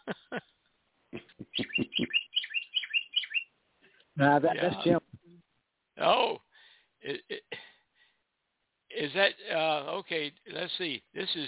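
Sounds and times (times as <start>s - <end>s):
pet bird chirping and calling: 1.3s - 3.5s
speech: 4.2s - 5.1s, 6.0s - 6.4s, 9.1s - 11.4s.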